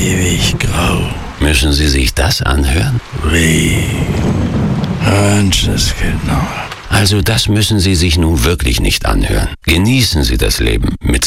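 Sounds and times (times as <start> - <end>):
speech: 0.0 - 4.2, 5.0 - 11.2
steady loud rain hissing: 0.0 - 7.4
low rumbling: 0.0 - 8.5.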